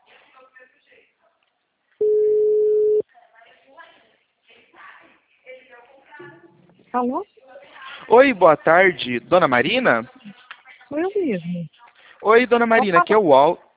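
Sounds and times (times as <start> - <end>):
telephone ringing tone while placing a call: 2.0 - 3.0
speech: 6.9 - 7.3, 8.1 - 10.1, 10.9 - 13.7.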